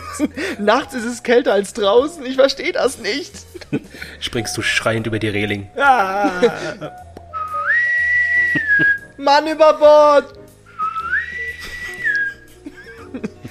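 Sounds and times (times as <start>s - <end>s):
speech: 0.2s - 7.1s, 9.2s - 10.4s
laughter: 3.5s - 4.2s, 5.8s - 7.0s, 8.4s - 9.0s, 11.6s - 13.4s
shrill whistle blast: 7.4s - 9.0s, 10.8s - 12.4s.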